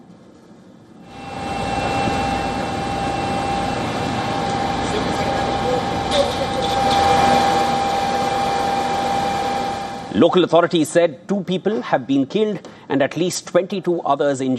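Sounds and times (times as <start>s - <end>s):
attack drones buzzing overhead over Kyiv Ukraine during an overnight attack: 1.1s - 10.2s
speech: 10.2s - 14.5s.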